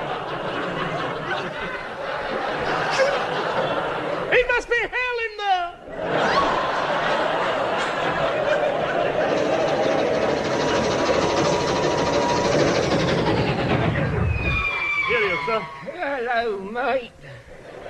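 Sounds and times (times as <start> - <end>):
laughter: 0.0 - 5.1, 5.8 - 16.3, 17.2 - 17.8
train rolling along rails with rattling clatter: 6.9 - 15.5.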